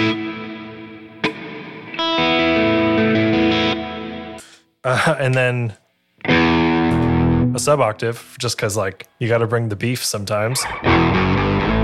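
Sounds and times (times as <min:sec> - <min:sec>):
electric guitar playing sustained ringing chords through big stereo reverb: 0:00.0 - 0:04.4, 0:06.2 - 0:07.6, 0:10.6 - 0:11.8
speech: 0:04.9 - 0:06.6, 0:07.6 - 0:11.4.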